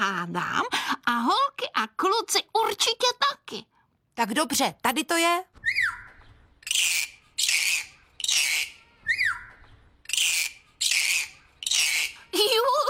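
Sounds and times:
speech: 0.2 - 3.6, 4.2 - 6.0, 12.4 - 12.8
short descending whistles: 5.6 - 12.3
parrot squawking: 5.6 - 12.6.

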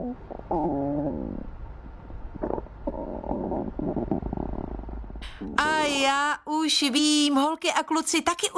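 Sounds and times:
empty stomach rumbling after skipping breakfast: 0.0 - 5.9
speech: 5.4 - 8.5.

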